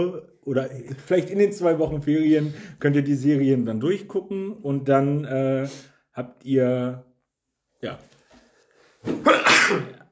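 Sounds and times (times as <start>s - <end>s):
speech: 0.0s - 7.1s, 7.8s - 8.1s, 9.0s - 10.0s
quiet intake of breath: 2.4s - 2.8s
sneeze: 9.0s - 10.1s.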